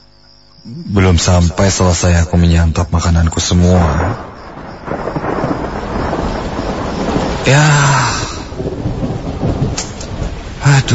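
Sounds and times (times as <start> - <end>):
speech: 0.6 - 4.3, 7.4 - 8.1
rumbling thunder: 3.4 - 10.9
heavy rain: 3.5 - 10.9.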